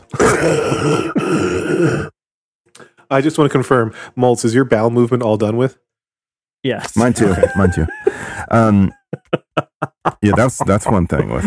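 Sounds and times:
phlegmy throat clearing: 0.0 - 2.2
speech: 0.4 - 2.2, 3.1 - 5.9, 6.6 - 11.4
laughter: 7.0 - 11.4.

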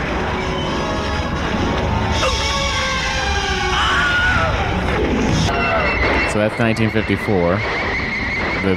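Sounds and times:
dense noisy movie-style audio: 0.0 - 8.7
stock Wilhelm scream sound effect from film clips: 2.1 - 4.8
speech: 6.4 - 7.9.

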